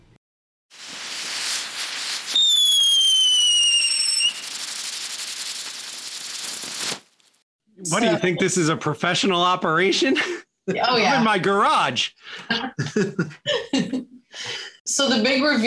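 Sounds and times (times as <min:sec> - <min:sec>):
firework fizzing crackling hiss: 0:00.7 - 0:07.4
speech: 0:07.8 - 0:13.9, 0:15.0 - 0:15.6.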